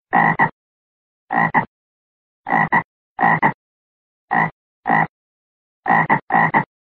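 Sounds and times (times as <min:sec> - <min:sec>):
frog calling: 0:00.1 - 0:00.5, 0:01.3 - 0:01.7, 0:02.5 - 0:03.6, 0:04.3 - 0:05.1, 0:05.9 - 0:06.7.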